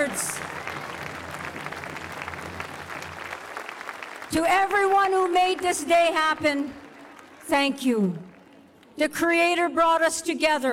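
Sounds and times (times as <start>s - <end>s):
large audience clapping: 0.0s - 9.0s
speech: 4.3s - 6.8s, 7.5s - 8.2s, 9.0s - 10.7s.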